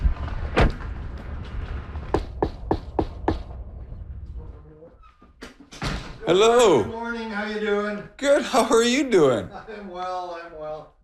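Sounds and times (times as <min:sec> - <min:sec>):
firm knocking on a front door: 0:02.1 - 0:03.4
speech: 0:06.3 - 0:10.9.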